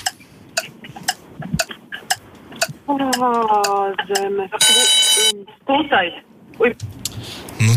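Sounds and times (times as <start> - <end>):
countdown clock ticking during a geography quiz question: 0.0 - 5.3
speech: 2.9 - 7.0, 7.6 - 7.7
loud bright bell ringing after a quiz question: 4.6 - 5.3.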